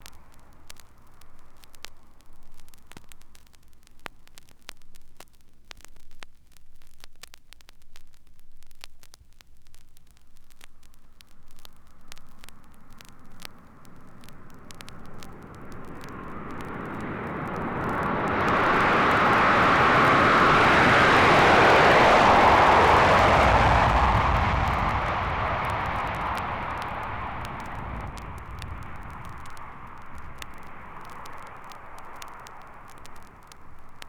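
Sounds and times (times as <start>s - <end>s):
DC8 jet taking off: 13.4s - 34.0s.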